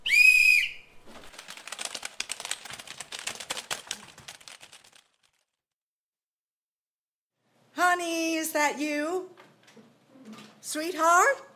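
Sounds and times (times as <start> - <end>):
shrill whistle blast: 0.0 - 0.9
many computer keyboards clattering in typing: 1.2 - 5.2
speech: 8.0 - 9.4, 10.7 - 11.5.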